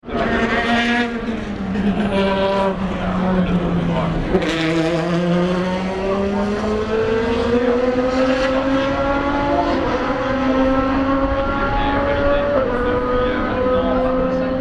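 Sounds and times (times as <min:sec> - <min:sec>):
Ferrari F550 engine at start finish at 24h Le Mans: 0:00.0 - 0:14.5.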